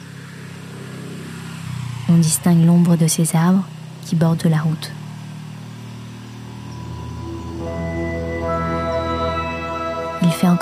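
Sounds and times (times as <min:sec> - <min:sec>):
tuk-tuk engine running at night: 0:00.0 - 0:10.6
speech: 0:02.1 - 0:05.0, 0:10.4 - 0:10.6.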